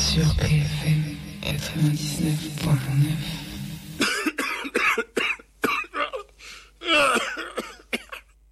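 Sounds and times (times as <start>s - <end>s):
speech: 0.2s - 3.5s
harsh dry coughs: 4.0s - 8.4s.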